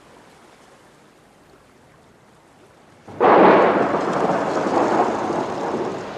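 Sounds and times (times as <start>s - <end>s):
huge waves crashing into a boat on Lake Galilee: 3.1s - 6.1s
roaring wind of a storm on Lake Galilee: 3.1s - 6.1s.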